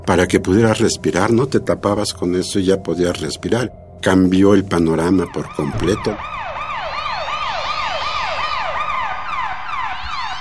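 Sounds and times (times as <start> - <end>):
speech: 0.1 - 6.4
loud police siren yelping: 5.1 - 10.3.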